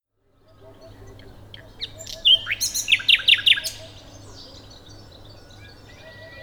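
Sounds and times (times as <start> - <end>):
common nightingale Luscinia megarhynchos song: 0.4 - 6.4.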